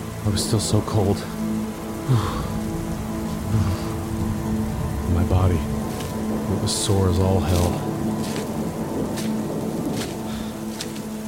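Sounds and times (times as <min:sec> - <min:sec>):
light rain falling after a storm: 0:00.0 - 0:11.2
speech: 0:00.2 - 0:01.4, 0:02.1 - 0:02.5, 0:03.5 - 0:03.9, 0:05.1 - 0:05.8, 0:06.5 - 0:08.4
faint low rumble: 0:02.1 - 0:10.6.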